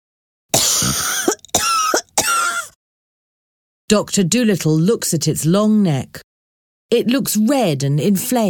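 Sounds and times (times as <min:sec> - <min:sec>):
giraffe coughing: 0:00.6 - 0:02.7
speech: 0:03.9 - 0:06.3, 0:06.9 - 0:08.4.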